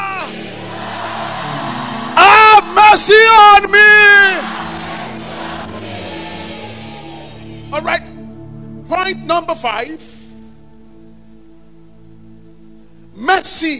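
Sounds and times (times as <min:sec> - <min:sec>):
congregation shouting a loud fervent phrase: 0:00.0 - 0:08.1
speech: 0:02.9 - 0:04.5, 0:09.1 - 0:10.2, 0:13.4 - 0:13.7.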